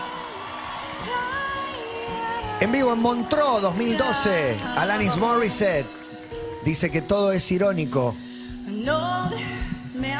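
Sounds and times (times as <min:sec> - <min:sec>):
live concert crowd yelling and whooping at Montreux: 0:00.0 - 0:06.2
speech: 0:02.6 - 0:06.0, 0:06.6 - 0:08.2, 0:08.8 - 0:10.1.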